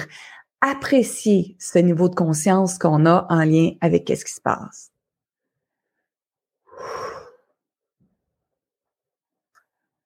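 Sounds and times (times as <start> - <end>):
speech: 0.6 - 4.9
deep slightly wheezy breath drawn in: 6.6 - 7.6.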